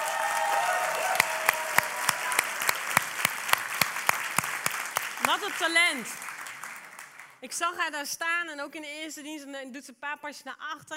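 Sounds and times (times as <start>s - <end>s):
audience applause: 0.0s - 7.4s
speech: 5.3s - 6.2s, 7.4s - 10.9s.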